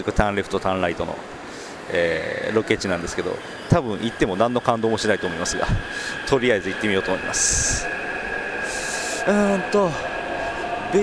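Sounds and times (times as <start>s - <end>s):
speech: 0.0s - 8.0s, 9.2s - 10.1s
train with wide cars arriving on a partly underground line: 1.0s - 11.0s
descending tonal squeals: 1.9s - 11.0s.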